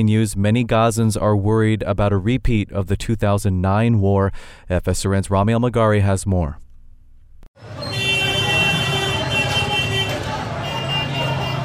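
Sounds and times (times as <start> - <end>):
speech: 0.0 - 6.6
engines of dozens of vehicles at a petrol station: 7.6 - 11.6.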